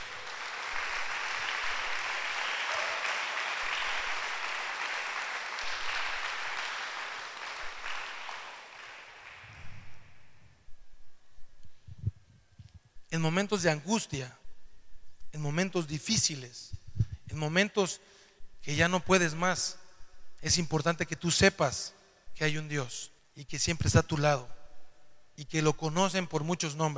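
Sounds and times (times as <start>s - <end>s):
crowd applauding God: 0.0s - 10.1s
speech: 13.2s - 14.4s, 15.4s - 19.8s, 20.4s - 24.6s, 25.4s - 26.9s.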